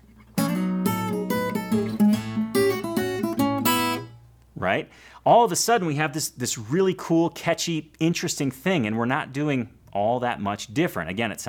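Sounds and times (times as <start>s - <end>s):
acoustic guitar chord transition with slides and pull-offs: 0.0s - 4.4s
speech: 4.6s - 11.4s.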